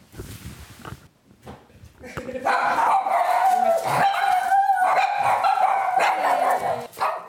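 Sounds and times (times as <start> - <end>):
several dogs barking and yapping excitedly: 2.4 - 7.2.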